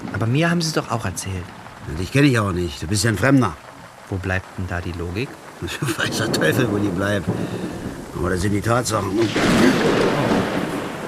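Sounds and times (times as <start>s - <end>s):
speech: 0.2s - 10.3s
laughter: 5.6s - 6.4s
thunder boom from a thunderstorm overhead: 5.9s - 11.0s.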